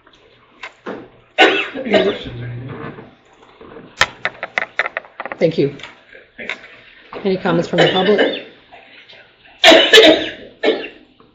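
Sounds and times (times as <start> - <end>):
woman coughing during a council meeting: 1.4 - 2.2, 7.7 - 8.5, 9.6 - 11.0
speech: 1.8 - 3.1, 5.4 - 6.6, 7.2 - 8.4, 10.0 - 10.3.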